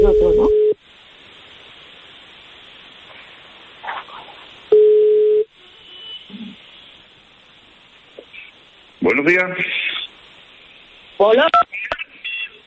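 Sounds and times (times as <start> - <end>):
outgoing telephone call ringing tone beeps: 0.0 - 0.8, 4.7 - 5.5
faint hiss on the telephone line: 0.0 - 12.6
speech: 9.2 - 9.7, 11.2 - 11.9.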